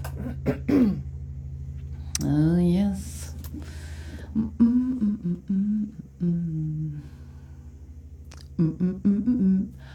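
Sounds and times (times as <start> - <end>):
steady low hum: 0.0 - 9.9
throat clearing: 0.1 - 1.0
person coughing: 0.1 - 1.1.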